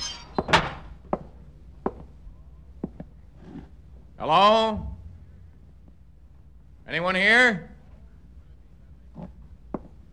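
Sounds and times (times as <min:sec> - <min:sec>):
screen door creaking open: 0:00.0 - 0:00.9
speech: 0:04.2 - 0:04.9, 0:06.9 - 0:07.7.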